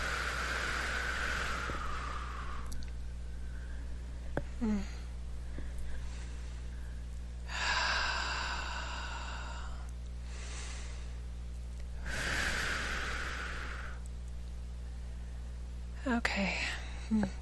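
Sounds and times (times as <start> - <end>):
deep breathing in a guided relaxation session: 0.0 - 11.4, 12.0 - 14.1
low steady hum: 0.0 - 17.3
speech: 4.6 - 5.0, 16.2 - 17.3.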